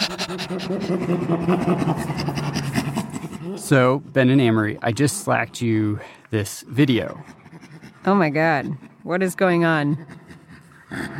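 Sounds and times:
person imitating a chimpanzee laugh with panting huffs: 0:00.0 - 0:03.6, 0:09.9 - 0:11.1
speech: 0:00.2 - 0:02.6, 0:03.5 - 0:07.4, 0:08.0 - 0:10.2, 0:10.9 - 0:11.1.

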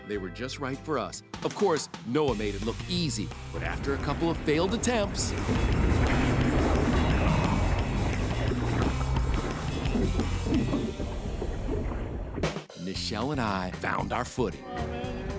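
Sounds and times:
speech: 0:00.1 - 0:06.8, 0:13.1 - 0:15.2
small ocean waves washing in front of the Royal Hawaiian in Hawaii: 0:03.6 - 0:12.6.

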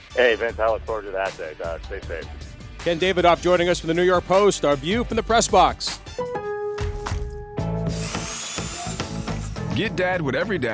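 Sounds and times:
speech: 0:00.2 - 0:06.3, 0:09.8 - 0:10.7
cordless power drill whirring and grinding: 0:07.9 - 0:09.8.

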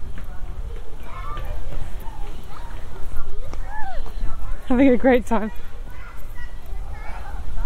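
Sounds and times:
children's footsteps pattering on a playing field: 0:00.0 - 0:06.8
children shouting and chattering on a playing field: 0:00.0 - 0:07.6
speech: 0:04.7 - 0:05.7.

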